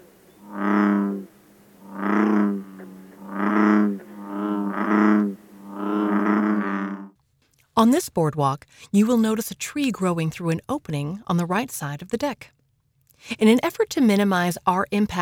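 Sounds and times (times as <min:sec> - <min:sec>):
bullfrog croaking: 0:00.0 - 0:07.2
speech: 0:07.8 - 0:12.6, 0:13.2 - 0:15.1.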